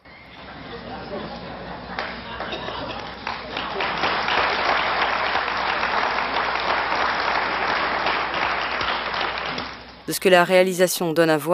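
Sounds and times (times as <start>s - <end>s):
large audience applause: 0.4s - 9.9s
large audience laughter: 0.6s - 5.8s
speech: 10.1s - 11.5s.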